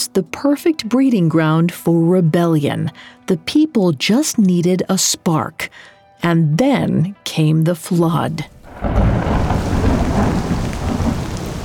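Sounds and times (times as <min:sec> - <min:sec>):
speech: 0:00.0 - 0:09.4
deep rumble of thunder: 0:08.5 - 0:11.6
heavy torrential rain pouring: 0:08.5 - 0:11.6.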